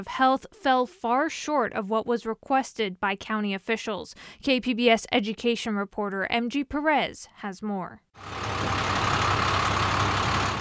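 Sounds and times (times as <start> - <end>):
speech: 0.0 - 8.8
large delivery truck engine idling: 8.2 - 10.5.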